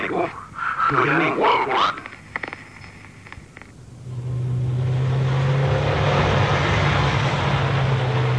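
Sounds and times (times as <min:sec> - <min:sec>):
speech: 0:00.1 - 0:02.1
road noise: 0:01.5 - 0:08.3
black sedan engine roaring at full speed: 0:03.8 - 0:08.3.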